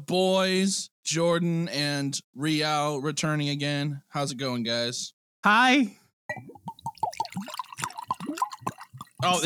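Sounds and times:
speech: 0.1 - 7.5, 9.2 - 9.4
drink being poured into a glass: 6.3 - 9.4.

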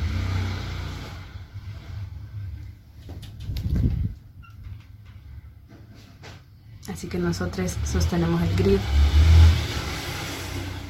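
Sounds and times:
motorcycle engine revving as it passes: 0.0 - 2.6, 7.6 - 10.8
speech: 6.9 - 9.2.

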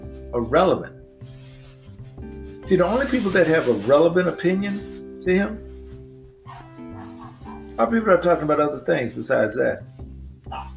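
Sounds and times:
speech: 0.3 - 1.4, 2.7 - 5.7, 7.8 - 9.9
dog barking with high tonal yelps and whines: 6.5 - 7.8, 10.5 - 10.7.

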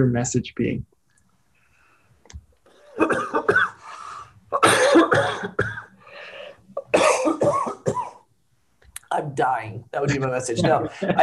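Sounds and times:
speech: 0.0 - 0.9, 3.0 - 3.6, 9.2 - 11.2
harsh repeated coughing fit: 2.8 - 3.9, 4.5 - 6.0, 6.8 - 8.3.

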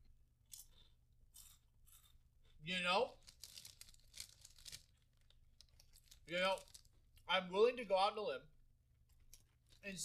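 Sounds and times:
crunching thick ridged potato chips: 0.5 - 7.2
speech: 2.6 - 3.2, 6.3 - 8.5, 9.8 - 10.0.

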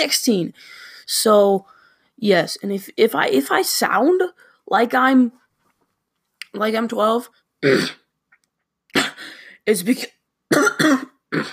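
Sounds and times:
speech: 0.0 - 5.4, 6.5 - 8.0, 9.6 - 11.5
person with a bad cough and sore throat coughing: 7.6 - 8.1, 8.9 - 9.4, 10.5 - 11.5
person with a sore throat clearing throat: 7.6 - 8.1, 9.0 - 9.2, 10.5 - 11.5.

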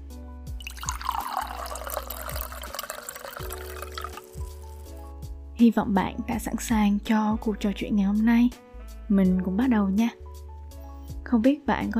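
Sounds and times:
tea pouring into a cup: 0.6 - 5.0
speech: 5.6 - 10.2, 11.3 - 11.9.

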